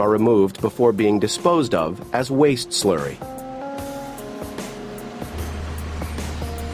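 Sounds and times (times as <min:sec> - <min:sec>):
speech: 0:00.0 - 0:03.4
industrial coal dryer spinning at high speed: 0:03.8 - 0:06.7.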